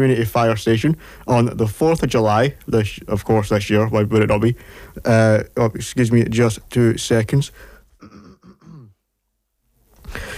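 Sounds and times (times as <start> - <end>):
speech: 0.0 - 7.7
person coughing harshly: 8.0 - 9.0.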